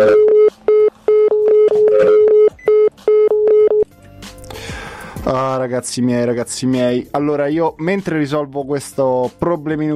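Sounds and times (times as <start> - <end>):
short loud phone-dialing tones as a call is placed: 0.0 - 3.9
speech: 5.3 - 9.9.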